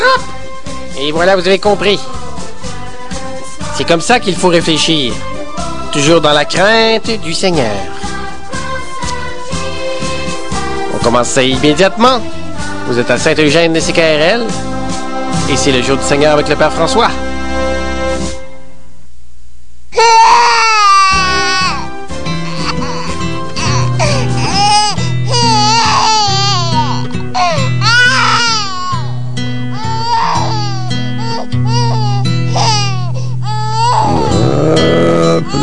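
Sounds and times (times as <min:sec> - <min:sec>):
young girl crying and wailing: 0:00.0 - 0:00.2, 0:20.0 - 0:35.6
steady low musical backing: 0:00.0 - 0:19.0, 0:20.5 - 0:35.6
speech: 0:01.0 - 0:02.2, 0:03.8 - 0:05.3, 0:06.0 - 0:07.9, 0:11.0 - 0:14.7, 0:15.5 - 0:17.2.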